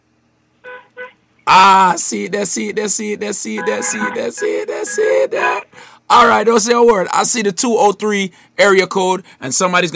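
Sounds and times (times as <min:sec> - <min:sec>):
car horn honking: 0:00.6 - 0:01.2, 0:03.6 - 0:05.7
speech: 0:01.5 - 0:09.9.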